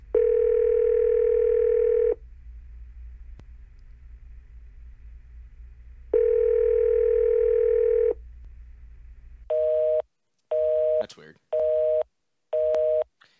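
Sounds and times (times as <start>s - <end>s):
low constant rumble: 0.0s - 10.0s
phone call ringback tones: 0.1s - 2.2s, 6.1s - 8.2s, 9.5s - 12.0s, 12.6s - 13.0s.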